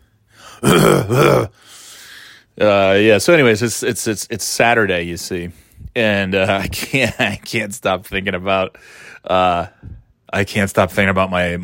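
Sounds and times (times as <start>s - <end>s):
person clearing throat: 0.6s - 1.5s
speech: 0.6s - 1.7s, 2.6s - 11.6s.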